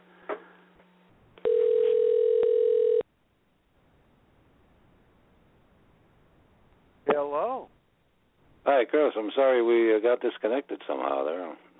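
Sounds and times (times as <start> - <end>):
telephone dial tone while redialing a dropped call: 1.4 - 3.0
speech: 8.7 - 11.7.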